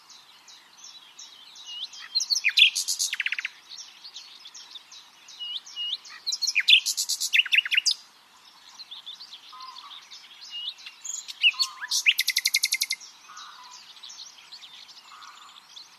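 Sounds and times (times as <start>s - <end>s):
common nightingale Luscinia megarhynchos song with chirps and rattles: 0.0s - 15.9s.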